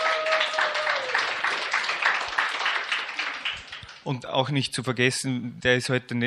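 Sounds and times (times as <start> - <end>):
audience applauding for their preachers: 0.0 - 4.1
speech: 4.0 - 6.2.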